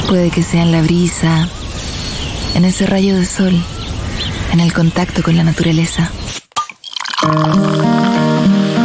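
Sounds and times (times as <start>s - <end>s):
speech: 0.1s - 1.6s, 2.6s - 3.7s, 4.5s - 6.2s, 7.2s - 7.8s
beer bottle being opened with a sharp pop: 6.5s - 8.2s
beer poured from a bottle with a fizzy gurgle: 6.5s - 8.6s
steady musical tones: 7.2s - 8.8s.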